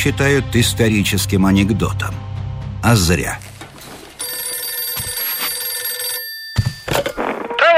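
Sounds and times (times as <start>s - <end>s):
speech: 0.0s - 3.5s
telephone bell ringing loudly: 4.2s - 7.6s.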